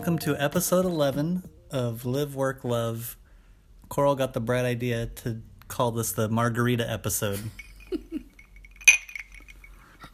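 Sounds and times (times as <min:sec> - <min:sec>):
speech: 0:00.0 - 0:03.2, 0:03.9 - 0:08.0
glass goblets clinking in a cheers toast: 0:07.6 - 0:10.1.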